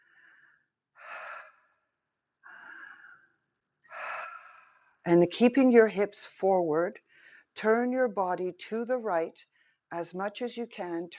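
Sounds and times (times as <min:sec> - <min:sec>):
deep breaths in a standing rib-breathing exercise: 0:00.0 - 0:01.8, 0:02.4 - 0:05.0, 0:07.0 - 0:07.6
speech: 0:05.0 - 0:07.0, 0:07.6 - 0:11.1.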